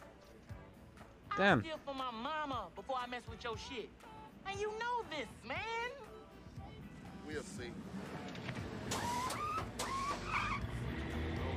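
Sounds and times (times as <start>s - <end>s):
speech: 1.4s - 6.1s, 7.3s - 8.6s
road noise: 5.2s - 11.5s
car engine rumbling: 6.4s - 11.5s
short high squeaks: 8.9s - 10.7s.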